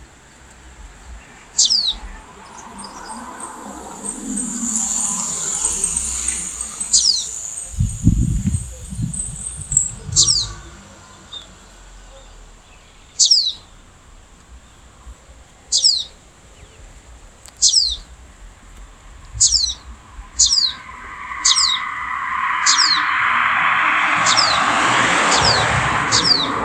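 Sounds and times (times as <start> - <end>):
Cinnyris frenatus sunbird calling: 1.2 - 13.4, 17.6 - 26.5.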